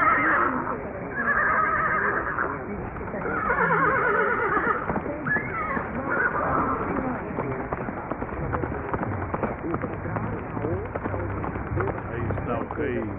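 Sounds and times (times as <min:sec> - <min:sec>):
horse neighing: 0:00.0 - 0:07.0
horse galloping hoofbeats: 0:02.1 - 0:13.1.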